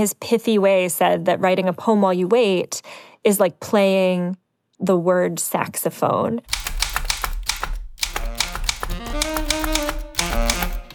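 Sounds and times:
speech: 0.0 - 6.6
manual typewriter typing: 6.5 - 10.9.

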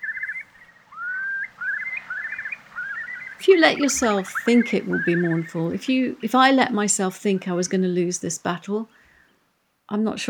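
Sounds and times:
Eurasian curlew song with trills, rising whistle and bubbling: 0.0 - 5.8
steady background noise: 0.0 - 10.2
speech: 3.4 - 9.0, 9.9 - 10.2.

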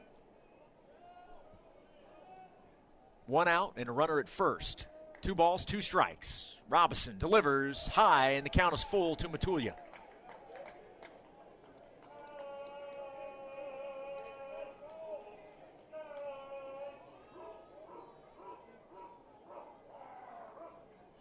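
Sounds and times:
steady murmur of a large ballpark crowd at a baseball game: 0.0 - 3.6, 4.2 - 21.1
speech: 3.3 - 9.8
dog-like barking and wavering howling from a sound effect or a fan: 16.4 - 20.9.

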